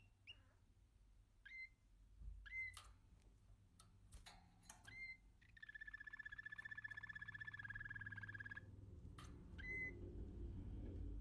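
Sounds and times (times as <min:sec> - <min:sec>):
low background hum: 0:00.0 - 0:11.1
American canary trilling: 0:01.4 - 0:01.8, 0:02.4 - 0:03.0, 0:04.1 - 0:10.2.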